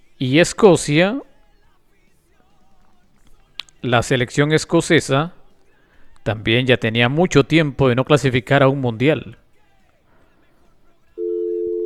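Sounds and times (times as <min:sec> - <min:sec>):
faint noise: 0:00.0 - 0:11.8
speech: 0:00.2 - 0:01.3, 0:03.8 - 0:05.4, 0:06.2 - 0:09.4
telephone tone after a call is cut off during a phone-in: 0:11.2 - 0:11.8.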